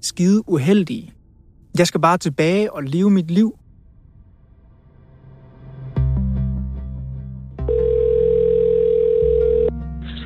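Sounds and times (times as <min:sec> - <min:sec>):
speech: 0:00.0 - 0:01.2, 0:01.8 - 0:03.6
electronic telephone ringing tone of an outgoing call: 0:07.7 - 0:09.7.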